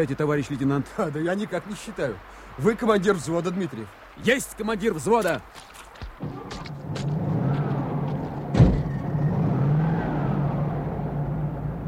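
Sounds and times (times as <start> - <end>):
speech: 0.0 - 6.5
dull thud: 6.2 - 9.0
car engine rumbling as the car pulls away and accelerates: 6.8 - 11.8.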